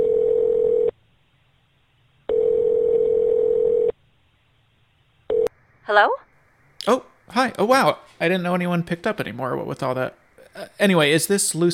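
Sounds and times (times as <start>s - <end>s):
phone line tone as a call is placed: 0.0s - 0.9s, 2.3s - 4.0s
speech: 5.9s - 6.2s, 6.8s - 11.7s.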